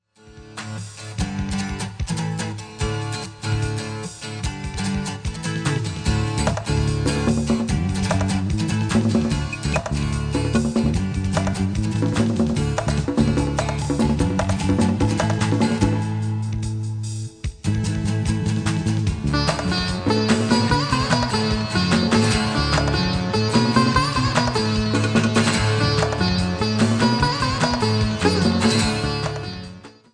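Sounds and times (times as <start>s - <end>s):
raga rock music fusing rock and Indian music: 0.2s - 30.1s.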